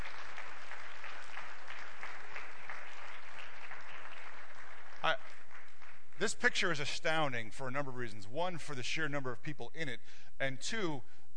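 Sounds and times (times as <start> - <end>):
sizable crowd applauding: 0.0 - 6.4
speech: 6.2 - 11.3.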